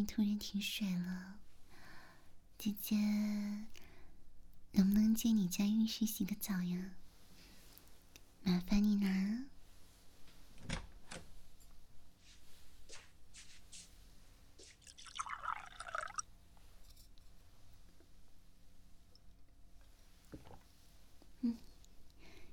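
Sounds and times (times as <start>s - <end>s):
speech: 0.0s - 1.4s, 2.6s - 3.8s, 4.7s - 7.0s, 8.4s - 9.5s
water pouring into a cup: 14.8s - 16.3s.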